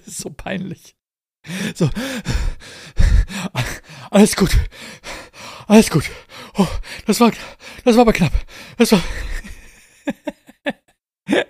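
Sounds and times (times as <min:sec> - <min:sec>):
speech: 0:00.1 - 0:02.5, 0:04.1 - 0:05.1, 0:05.7 - 0:09.4, 0:10.1 - 0:11.4
person imitating out-of-breath panting: 0:01.4 - 0:10.0
laughter: 0:09.0 - 0:11.4.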